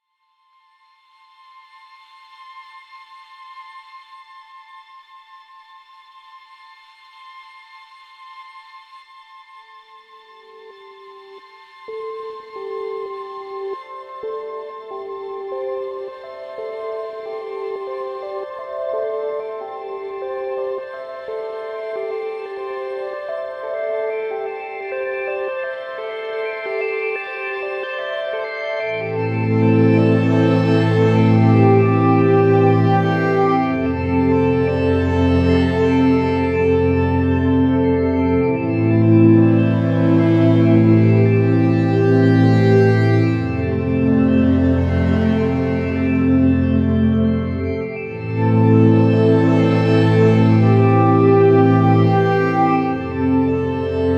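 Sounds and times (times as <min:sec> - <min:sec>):
synth pads: 0:11.9 - 0:54.1.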